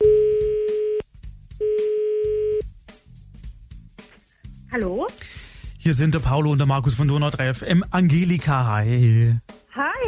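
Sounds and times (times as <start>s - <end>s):
ringback tone of an outgoing phone call: 0.0s - 1.0s, 1.6s - 2.6s
speech: 4.8s - 9.6s.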